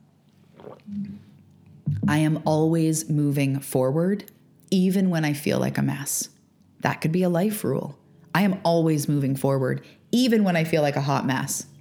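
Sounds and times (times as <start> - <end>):
person sipping coffee: 0.3 - 1.7
low gulping swallow: 0.6 - 2.0
speech: 2.1 - 11.7.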